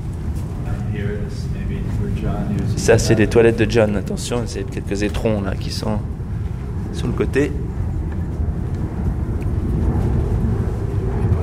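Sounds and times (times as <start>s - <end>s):
private jet engines roaring during takeoff and landing: 0.0s - 11.4s
speech: 1.3s - 6.2s, 7.0s - 7.6s.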